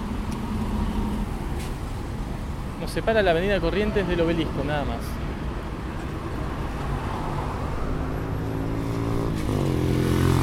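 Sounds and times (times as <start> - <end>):
steady traffic on a busy street: 0.0 - 10.4
speech: 2.8 - 5.2
motorcycle passing by on a busy street: 6.9 - 10.4.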